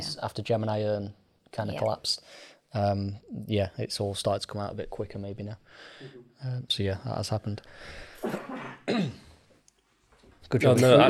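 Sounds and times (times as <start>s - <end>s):
speech: 0.0s - 9.2s, 10.5s - 11.0s
husky coughs: 8.2s - 9.3s.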